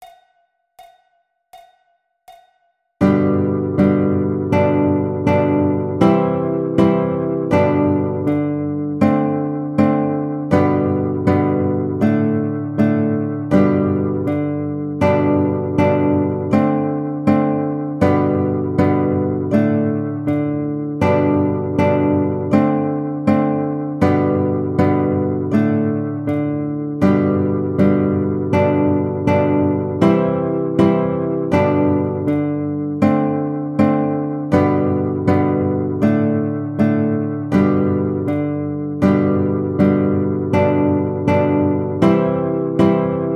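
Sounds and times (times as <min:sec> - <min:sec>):
guitar melody: 0:03.0 - 0:43.3.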